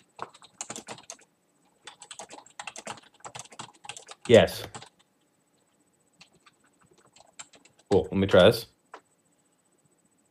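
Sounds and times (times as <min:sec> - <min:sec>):
typing on a computer keyboard: 0:00.0 - 0:08.2
speech: 0:04.3 - 0:04.8, 0:08.3 - 0:08.7.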